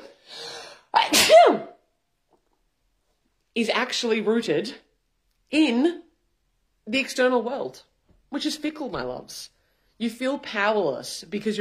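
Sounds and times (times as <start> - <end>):
human sneeze: 0.9 - 1.8
speech: 1.0 - 1.7, 3.6 - 4.8, 5.5 - 6.0, 6.9 - 11.5.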